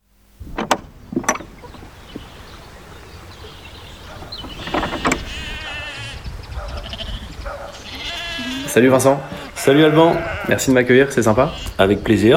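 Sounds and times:
sharp knocks: 0.4 - 5.6
sheep bleating in a sheepfold: 5.4 - 6.2, 6.8 - 11.8
speech: 8.8 - 12.3.

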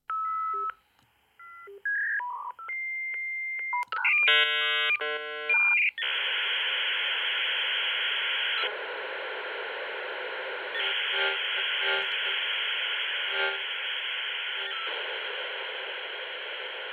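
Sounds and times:
dial-up modem dialing tones: 0.1 - 0.8, 1.4 - 16.9
dial-up modem screeching static hiss: 6.0 - 16.9.

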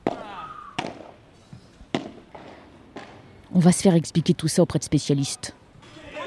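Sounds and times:
yellow padel balls struck by padel rackets: 0.0 - 1.2, 1.9 - 3.2
speech: 3.6 - 5.6.

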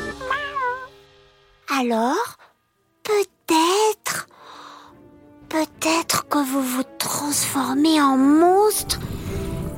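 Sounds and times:
drawn-out cat meow: 0.1 - 1.0
speech: 1.8 - 2.4, 5.5 - 9.5.

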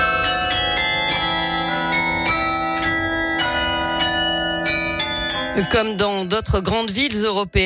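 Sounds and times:
city hall carillon playing national anthem: 0.0 - 6.0
speech: 5.6 - 7.6.

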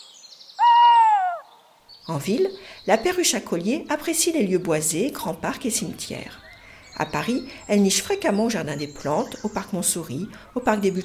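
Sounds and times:
tawny owl hooting: 0.6 - 1.6
speech: 2.1 - 11.0.

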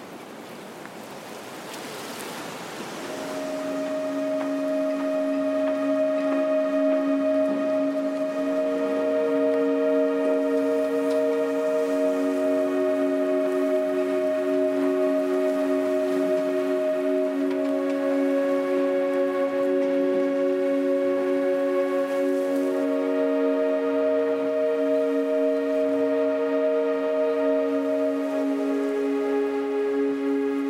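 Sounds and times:
harbor water: 0.0 - 30.6
wind whistling and humming through masts and rigging of moored sailboats at harbor: 0.0 - 30.6
breeze rushing: 1.4 - 30.6.

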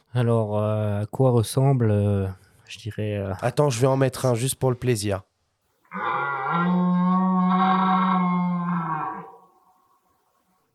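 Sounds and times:
speech: 0.2 - 5.3
red deer stag rutting bellow during the mating season: 5.9 - 9.8.

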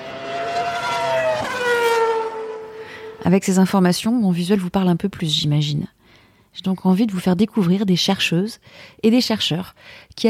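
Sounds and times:
car engine revving: 0.0 - 3.2
speech: 3.2 - 6.0, 6.6 - 10.2.

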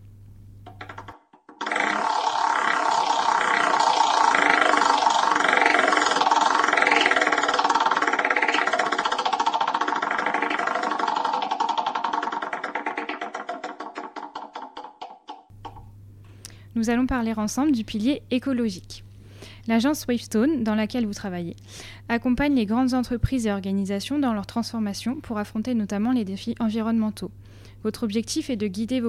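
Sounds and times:
prize wheel spinning with ticking clicks: 0.7 - 15.8
loud droning tone: 1.6 - 14.0
speech: 16.8 - 19.0, 19.7 - 29.0.

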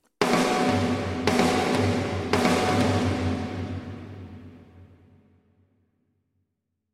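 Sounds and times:
heavy drum hits with cathedral-like reverb: 0.2 - 5.0.

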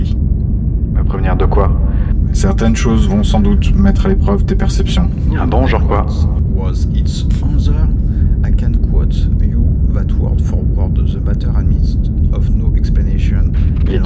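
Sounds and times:
engine humming: 0.0 - 14.0
speech: 2.4 - 7.9.

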